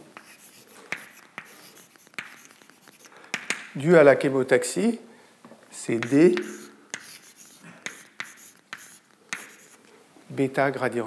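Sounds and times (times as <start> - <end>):
scratching of writing on a board during a lecture: 0.0 - 3.5, 6.0 - 9.8
writing tool tapping a board: 0.9 - 3.7, 6.0 - 9.8
speech: 3.8 - 5.1, 5.8 - 6.6, 10.4 - 11.0.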